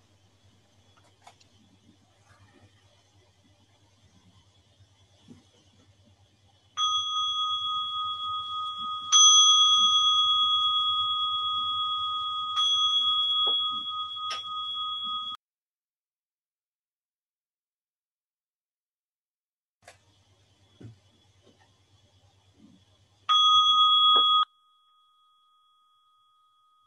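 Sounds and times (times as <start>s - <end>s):
bell struck to end a five-minute sitting: 6.8s - 15.4s, 23.3s - 26.8s.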